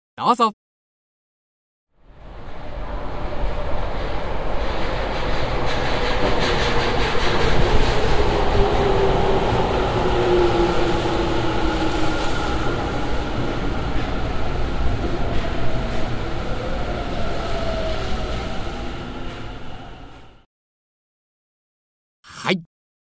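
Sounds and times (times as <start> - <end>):
speech: 0.2 - 0.6, 22.5 - 22.7
subway train pulling into a platform with rumble and electric whine: 2.2 - 20.4.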